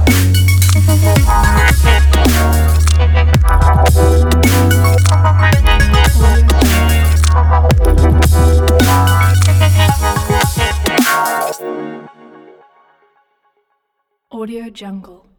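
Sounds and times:
future bass hip hop logo jingle: 0:00.1 - 0:11.6.

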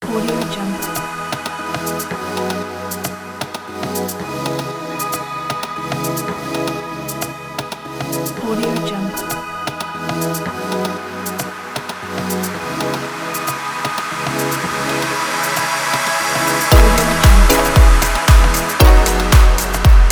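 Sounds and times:
future electronic music: 0:00.0 - 0:20.1.

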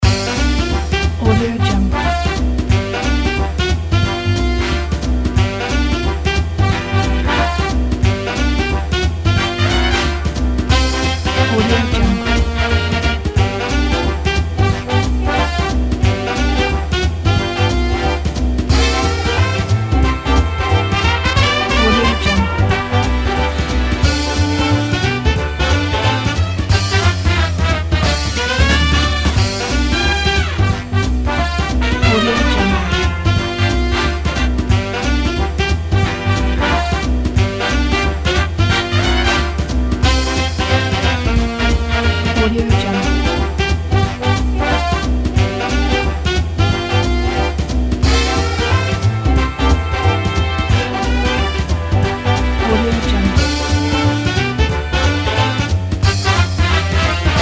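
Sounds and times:
classic big band music: 0:00.0 - 0:57.3.

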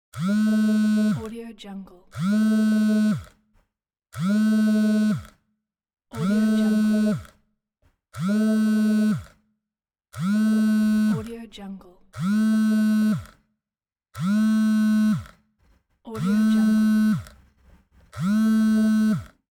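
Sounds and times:
phone vibrating: 0:00.2 - 0:01.3, 0:02.1 - 0:03.3, 0:04.2 - 0:05.4, 0:06.2 - 0:07.3, 0:08.2 - 0:09.3, 0:10.2 - 0:11.3, 0:12.2 - 0:13.3, 0:14.2 - 0:15.4, 0:16.2 - 0:17.4, 0:18.2 - 0:19.4.

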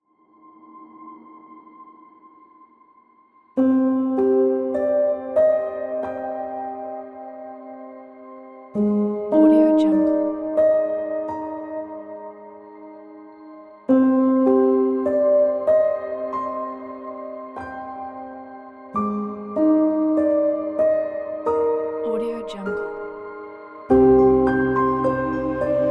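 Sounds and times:
sad emotional piano soundscape: 0:00.0 - 0:25.8.

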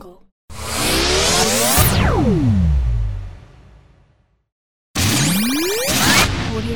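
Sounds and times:
futuristic glitch transition: 0:00.5 - 0:02.5, 0:05.0 - 0:06.7.

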